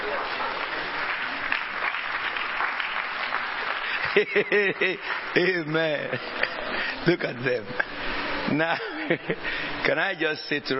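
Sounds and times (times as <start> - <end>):
crowd applauding steadily: 0.0 - 6.3
laughter: 3.8 - 7.1, 7.7 - 9.7
speech: 4.2 - 7.8, 8.5 - 10.7.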